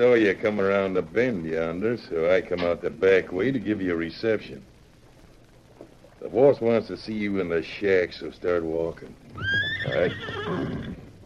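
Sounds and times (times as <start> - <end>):
speech: 0.0 - 4.7, 6.2 - 10.9
trick horse neighing: 9.3 - 11.2.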